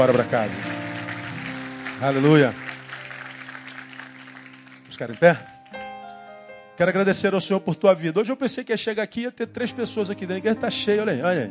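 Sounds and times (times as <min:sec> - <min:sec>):
speech: 0:00.0 - 0:00.8, 0:02.0 - 0:02.6, 0:05.0 - 0:05.5, 0:06.8 - 0:11.4
crowd clapping: 0:00.0 - 0:05.8.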